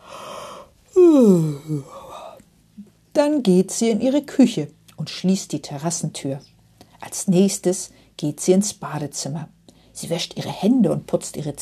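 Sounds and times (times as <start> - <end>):
drawn-out human yawn: 0.0 - 2.4
speech: 1.2 - 2.0, 2.8 - 11.6.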